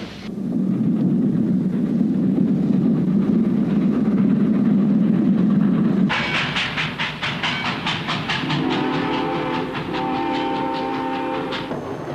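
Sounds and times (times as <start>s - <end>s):
train rumbling: 0.0s - 12.1s
wheels clattering over rail joints: 4.8s - 12.1s
horn-like tone: 8.6s - 11.6s.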